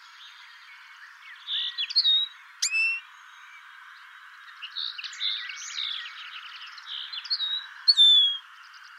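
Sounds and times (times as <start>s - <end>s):
common linnet song twittering: 0.1s - 3.7s, 4.4s - 8.9s
common linnet sharp high calls: 1.6s - 3.0s, 7.2s - 8.4s.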